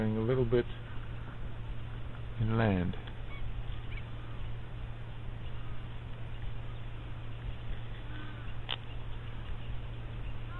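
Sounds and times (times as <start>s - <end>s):
low hum: 0.0s - 10.5s
speech: 0.3s - 0.9s, 2.4s - 3.1s
quelea swarm chattering and chirping in Kruger National Park: 3.2s - 10.5s.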